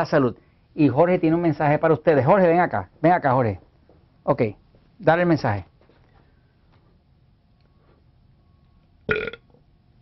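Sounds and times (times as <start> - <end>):
speech: 0.0 - 5.7
burp: 9.1 - 9.5.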